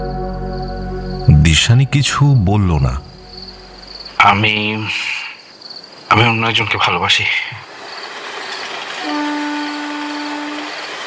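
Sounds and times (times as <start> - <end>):
constant wash of noise: 0.0 - 8.1
speech: 1.5 - 3.1, 4.2 - 5.1, 6.1 - 7.7
distant train whistle: 8.9 - 11.0.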